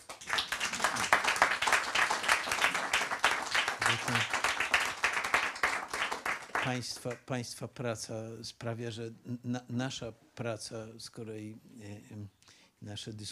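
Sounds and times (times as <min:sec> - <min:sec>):
audience applause for an event production crew: 0:00.0 - 0:07.2
speech: 0:03.9 - 0:04.3, 0:06.6 - 0:13.3.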